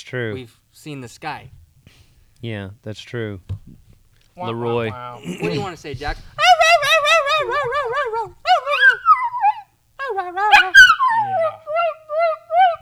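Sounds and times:
speech: 0:00.0 - 0:01.6, 0:02.4 - 0:03.7, 0:04.4 - 0:08.4
laughter: 0:04.4 - 0:09.2
dog whimpering and yipping: 0:06.2 - 0:12.8.

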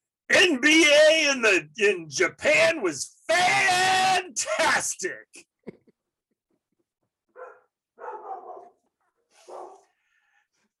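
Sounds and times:
speech: 0:00.4 - 0:05.5
female dog barking excitedly: 0:07.3 - 0:09.9.

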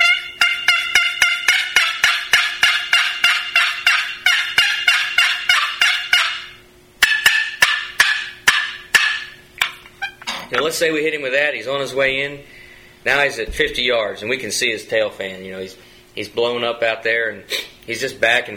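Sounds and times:
fast excited yelping on a turkey box call: 0:00.0 - 0:10.3
speech: 0:10.6 - 0:18.5.

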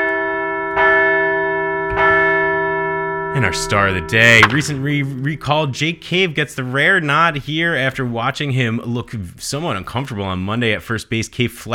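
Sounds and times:
large bell ringing with resonant strikes: 0:00.0 - 0:06.2
speech: 0:03.4 - 0:11.7.

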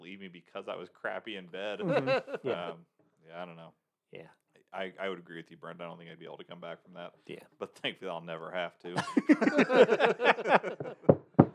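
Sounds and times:
speech: 0:00.1 - 0:11.4
laughter: 0:01.3 - 0:02.8, 0:08.9 - 0:11.1
sharp knocks on wood: 0:10.8 - 0:11.5.

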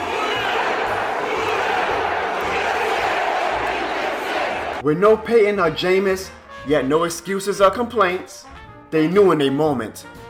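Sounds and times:
large stadium crowd roaring and cheering: 0:00.0 - 0:04.8
speech: 0:04.8 - 0:10.2.

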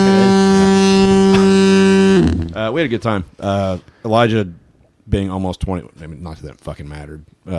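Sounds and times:
ship's horn blaring in a low sustained blast: 0:00.0 - 0:02.6
speech: 0:02.7 - 0:07.5.

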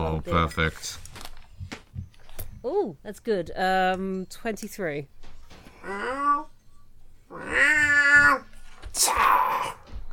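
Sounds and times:
speech: 0:00.2 - 0:01.1, 0:02.6 - 0:05.2, 0:05.8 - 0:06.5, 0:07.3 - 0:08.4, 0:09.0 - 0:09.4
person imitating a cat with wavering meows: 0:05.8 - 0:06.5, 0:07.3 - 0:09.8.

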